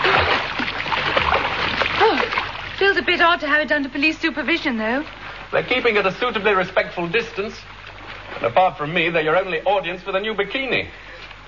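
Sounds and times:
splashing and churning water from someone swimming in a pool: 0.0s - 9.1s
speech: 3.0s - 7.7s, 8.3s - 11.0s.

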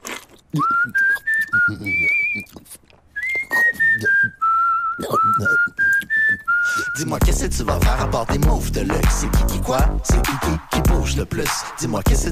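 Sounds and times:
speech: 0.5s - 2.9s, 5.0s - 5.8s, 6.7s - 12.2s
person whistling a short melody of sustained clear notes: 0.6s - 2.5s, 3.2s - 7.9s.

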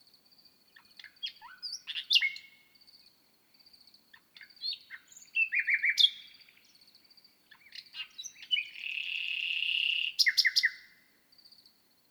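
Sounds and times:
common nightingale singing at night on the Lesches-en-Diois plateau, Drôme, France: 0.7s - 2.6s, 4.1s - 6.8s, 7.5s - 10.9s.

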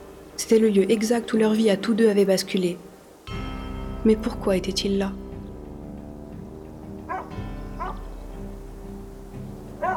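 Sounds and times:
speech: 0.4s - 2.9s, 4.0s - 5.2s
small dog giving short bright yips: 7.1s - 8.1s.

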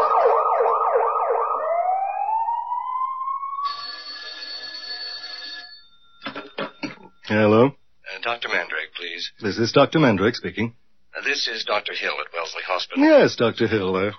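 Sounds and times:
emergency vehicle siren: 0.0s - 4.3s
steady electronic ringing tone: 3.0s - 6.7s
speech: 8.2s - 14.1s.

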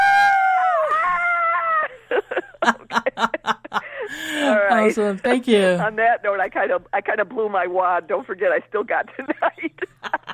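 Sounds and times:
several people screaming together: 0.0s - 1.9s
laughter: 1.2s - 4.2s, 9.1s - 10.3s
speech: 4.8s - 9.8s.

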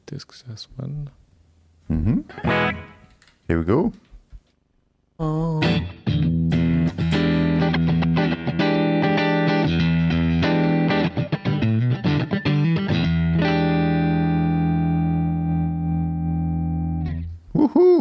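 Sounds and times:
speech: 0.1s - 1.2s, 1.9s - 2.9s, 3.5s - 4.1s, 5.2s - 5.9s
electric guitar playing through a clean effects preset with echo and reverb: 2.3s - 3.1s, 5.6s - 17.3s.

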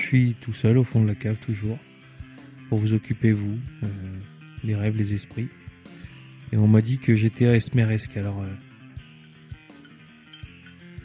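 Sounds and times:
speech: 0.1s - 1.9s, 2.7s - 5.6s, 6.5s - 8.7s
ice cubes clinking in a glass of mentholated digestif: 9.2s - 11.0s.

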